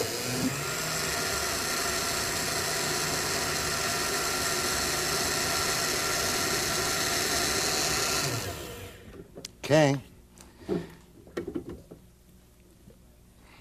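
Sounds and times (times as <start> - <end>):
blender blending thick mixture: 0.0 - 9.0
speech: 9.7 - 10.1.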